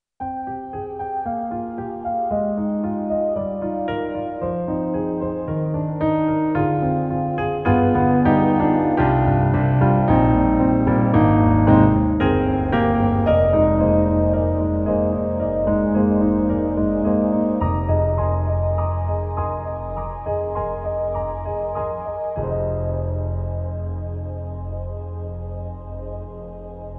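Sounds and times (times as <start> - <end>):
warm vox piano on SD-80 synthesizer: 0.2 - 26.9.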